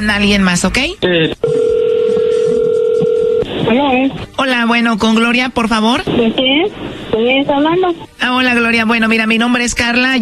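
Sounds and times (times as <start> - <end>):
speech: 0.0 - 1.6, 3.7 - 10.1
steady single-pitched telephone tone while a call is placed: 1.4 - 3.5.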